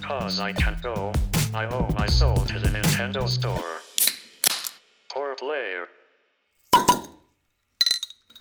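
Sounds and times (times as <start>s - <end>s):
speech: 0.1s - 3.9s, 5.4s - 6.0s
beer spilling: 6.7s - 7.1s
beer glasses clinking in a toast: 6.7s - 7.2s, 7.8s - 8.3s
lighter rattle of glass with a thin ringing tone: 6.7s - 7.2s, 7.8s - 8.3s.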